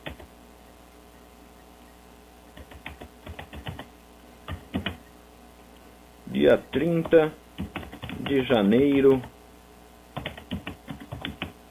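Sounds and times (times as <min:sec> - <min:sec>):
faint typing on a computer keyboard: 0:00.0 - 0:00.4, 0:02.5 - 0:05.1, 0:06.7 - 0:09.4, 0:10.1 - 0:11.6
speech: 0:06.4 - 0:07.4, 0:08.3 - 0:09.3.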